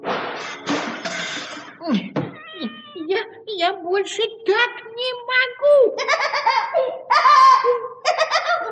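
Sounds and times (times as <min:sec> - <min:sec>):
pendulum clock and painted cat crashing onto the floor: 0:00.0 - 0:01.7
cat meowing: 0:02.3 - 0:03.0
speech: 0:03.9 - 0:04.8
laughter: 0:06.0 - 0:08.6.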